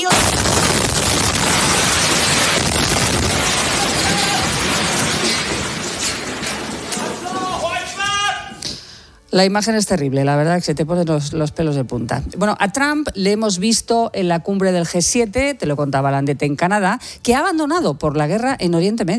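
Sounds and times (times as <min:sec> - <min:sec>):
sudden loud explosion: 0:00.1 - 0:06.9
roaring crackling noise and rumble: 0:00.1 - 0:07.7
speech: 0:09.3 - 0:19.1.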